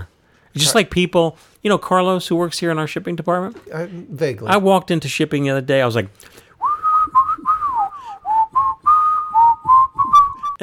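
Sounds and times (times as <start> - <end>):
speech: 0.6 - 6.4
person whistling a loose tune: 6.6 - 10.6.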